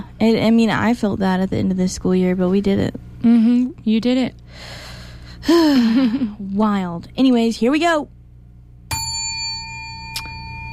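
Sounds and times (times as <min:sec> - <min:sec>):
speech: 0:00.2 - 0:08.2
bright time-check bell ding: 0:08.9 - 0:10.7.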